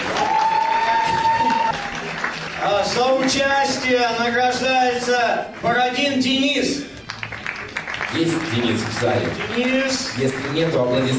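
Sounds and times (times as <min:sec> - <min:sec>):
audience applauding a contest finalist at an awards ceremony: 0:00.0 - 0:04.4, 0:07.0 - 0:11.1
speech: 0:02.9 - 0:06.9, 0:08.1 - 0:11.1.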